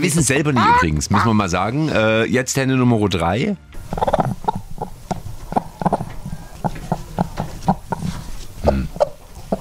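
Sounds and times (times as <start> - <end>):
speech: 0.0 - 4.4
chicken clucking: 0.5 - 1.4, 3.8 - 9.5.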